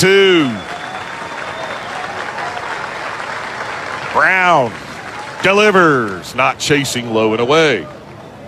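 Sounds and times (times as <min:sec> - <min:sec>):
speech: 0:00.0 - 0:00.6, 0:04.2 - 0:04.8, 0:05.4 - 0:08.0
large baseball stadium crowd clapping: 0:00.0 - 0:06.3
large baseball stadium crowd cheering: 0:00.0 - 0:08.4.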